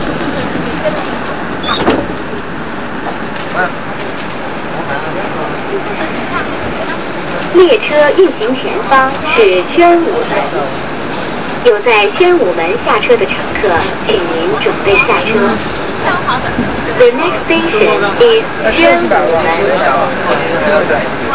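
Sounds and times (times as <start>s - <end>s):
subway train in China: 0.0s - 21.3s.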